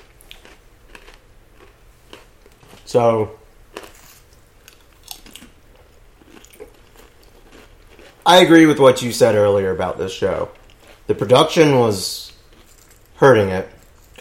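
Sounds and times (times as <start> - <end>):
loud crunchy pretzel chewing: 0.0 - 2.9, 3.7 - 8.6, 12.2 - 14.1
speech: 2.9 - 3.4, 8.3 - 12.3, 13.2 - 14.1.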